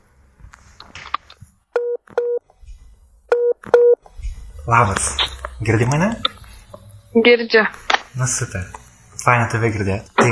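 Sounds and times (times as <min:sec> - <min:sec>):
faint rustling and soft handling noises: 0:00.0 - 0:10.3
touch-tone beeps of a telephone number being dialled: 0:01.1 - 0:02.4, 0:03.3 - 0:04.0
speech: 0:04.7 - 0:06.3, 0:07.1 - 0:10.3.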